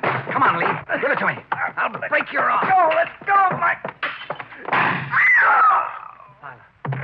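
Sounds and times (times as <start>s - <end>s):
heavy thumps: 0.0s - 5.2s, 6.8s - 7.0s
speech: 0.4s - 3.9s
gunshot during a struggle over a gun: 4.7s - 5.2s.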